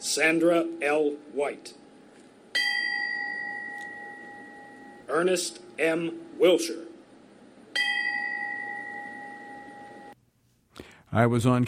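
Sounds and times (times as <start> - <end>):
speech: 0.2 - 1.8, 5.1 - 6.9, 11.1 - 11.6
deep memorial bell toll: 2.6 - 5.1, 7.8 - 10.2.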